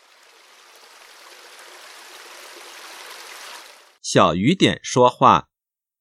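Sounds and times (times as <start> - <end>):
babbling stream: 0.0 - 4.0
speech: 4.1 - 5.5.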